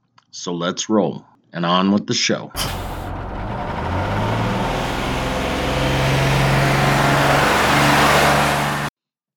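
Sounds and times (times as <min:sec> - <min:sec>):
speech: 0:00.4 - 0:02.8
heavy bus engine revving and pulling away: 0:02.6 - 0:08.9.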